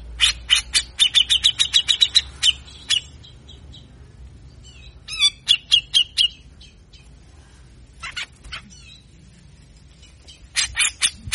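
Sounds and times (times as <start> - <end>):
grey-cheeked bulbul rasping calls: 0.0 - 3.9, 4.6 - 7.2, 10.0 - 11.3.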